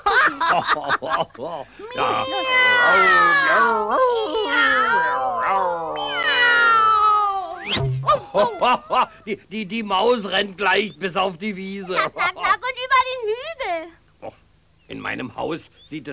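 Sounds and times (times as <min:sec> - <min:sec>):
laughter: 0:00.0 - 0:09.3, 0:11.8 - 0:12.6
speech: 0:00.5 - 0:05.9, 0:07.7 - 0:16.1
cat meowing and yowling loudly: 0:01.9 - 0:07.7.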